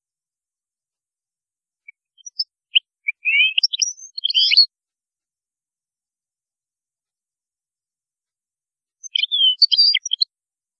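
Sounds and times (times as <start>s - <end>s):
European goldfinch twittering and whistling: 2.2s - 4.7s, 9.0s - 10.3s.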